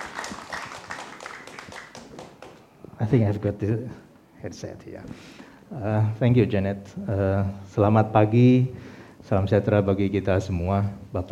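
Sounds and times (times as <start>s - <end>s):
audience clapping at a festival showcasing young Indonesian writers: 0.0s - 2.7s
speech: 3.0s - 11.3s.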